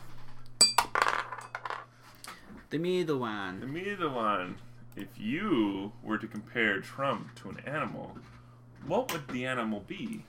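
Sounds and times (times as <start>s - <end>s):
low steady hum: 0.0s - 10.2s
die rolling and clattering on floor: 0.6s - 1.9s
speech: 2.7s - 10.2s.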